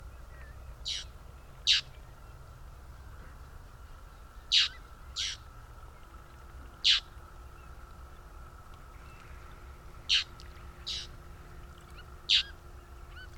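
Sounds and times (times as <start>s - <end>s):
Martin Pescador Verde call: 0.8s - 2.0s, 4.5s - 5.5s, 6.8s - 7.8s, 9.1s - 13.3s.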